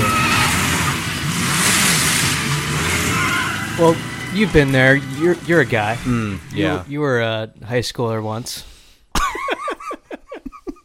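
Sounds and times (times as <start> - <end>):
Volvo car engine revving: 0.0 - 7.0
Volvo car sliding and skidding to a stop: 0.0 - 7.3
loud rough road noise: 0.0 - 7.3
speech: 3.8 - 8.7
laughter: 9.2 - 10.8.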